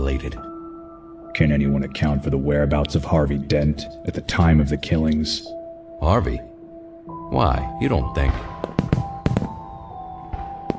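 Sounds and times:
speech: 0.0s - 0.5s, 1.4s - 6.5s, 7.3s - 9.0s
fireworks bangs: 8.3s - 10.7s
fireworks crackle: 8.3s - 10.7s.

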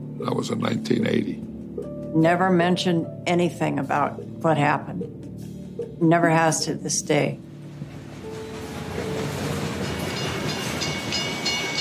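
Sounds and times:
speech: 0.2s - 1.5s, 2.1s - 5.0s, 6.0s - 7.4s
train rolling on rails: 7.6s - 11.7s
rattling clatter of a train: 7.7s - 11.7s.

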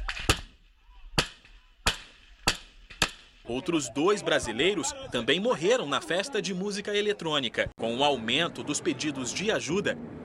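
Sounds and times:
gunshots: 1.2s - 3.5s
speech: 3.5s - 10.2s.

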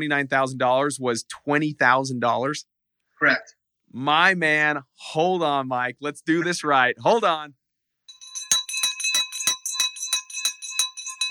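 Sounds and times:
speech: 0.0s - 7.6s
victory bell ringing: 8.1s - 11.2s.

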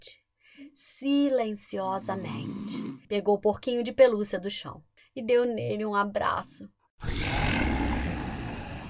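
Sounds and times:
speech: 1.0s - 7.2s
wolf growling: 7.0s - 8.8s.

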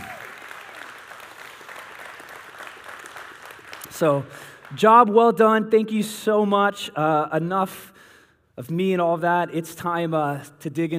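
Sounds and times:
church audience applauding its preachers: 0.0s - 4.8s
speech: 3.9s - 8.0s, 8.6s - 10.9s.

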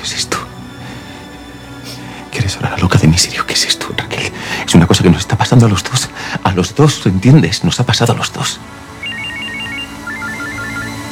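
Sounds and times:
speech: 2.5s - 8.8s
telephone electronic melodic ringtone with chirpy beeps: 9.0s - 11.0s.

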